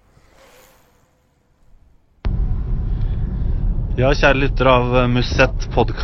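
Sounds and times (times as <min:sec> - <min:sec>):
steady loud low-frequency rumble: 0:02.2 - 0:06.0
speech: 0:04.0 - 0:06.0.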